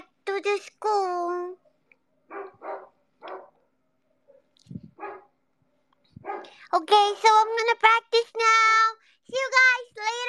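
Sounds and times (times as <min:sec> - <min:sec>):
speech: 0:00.4 - 0:01.1, 0:06.7 - 0:10.2
dog barking: 0:02.2 - 0:05.4, 0:06.2 - 0:06.6.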